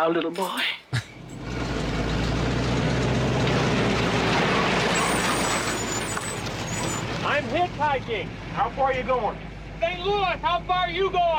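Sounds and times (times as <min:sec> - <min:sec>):
speech: 0:00.0 - 0:01.1, 0:07.4 - 0:11.3
large truck engine droning: 0:01.0 - 0:11.3
truck air brakes hissing: 0:04.9 - 0:07.1.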